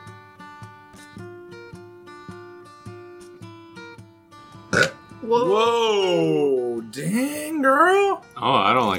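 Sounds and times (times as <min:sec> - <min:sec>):
loud drawn-out belch: 0:04.7 - 0:05.0
speech: 0:04.8 - 0:08.9.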